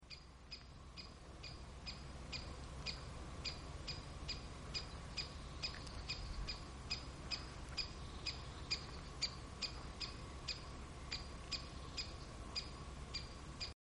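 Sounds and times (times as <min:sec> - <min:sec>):
great spotted woodpecker Dendrocopos major: 0:00.0 - 0:13.8.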